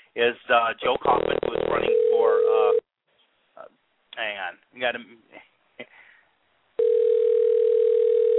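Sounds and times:
speech: 0.2 - 2.8, 3.6 - 6.0
telephone tone on an outgoing call: 1.7 - 2.8, 6.8 - 8.3.

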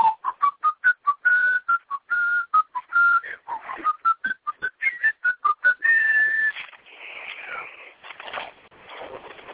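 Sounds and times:
mail carrier whistling a brisk staccato classical tune while pedaling: 0.0 - 6.6.

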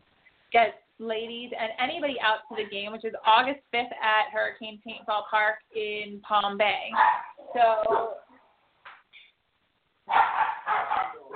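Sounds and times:
speech: 0.5 - 8.2
several dogs barking at night: 7.0 - 8.4, 10.1 - 11.3.

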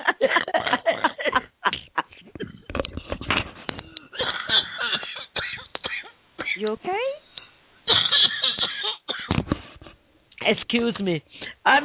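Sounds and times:
harsh coughing from a sick person stirred up by laughing: 0.3 - 2.7, 3.8 - 6.6, 7.9 - 9.4
speech: 6.6 - 7.1, 10.5 - 11.8.

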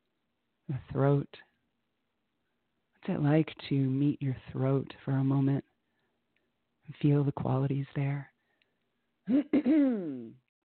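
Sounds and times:
speech: 0.7 - 1.5, 3.0 - 5.7, 6.9 - 8.3, 9.3 - 10.4
small cough: 9.3 - 10.4.

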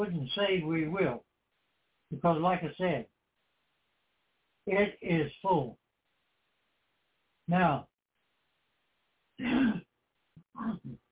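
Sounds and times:
speech: 0.0 - 1.3, 2.1 - 3.1, 4.7 - 5.8, 7.5 - 7.9, 9.4 - 9.8, 10.6 - 11.0
person clearing throat with harsh grunting rasps: 9.4 - 9.9.

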